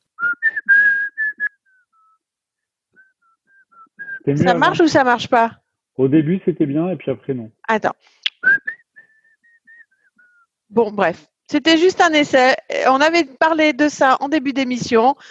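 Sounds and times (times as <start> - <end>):
person whistling a melody into a microphone: 0.2 - 2.2, 3.0 - 4.3, 8.3 - 10.5
speech: 4.3 - 8.2, 10.7 - 15.2.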